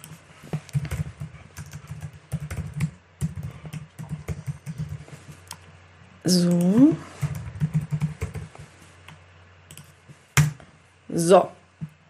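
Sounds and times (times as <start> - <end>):
typing on a computer keyboard: 0.0 - 5.0, 6.6 - 8.5
speech: 6.3 - 7.1, 11.2 - 11.6.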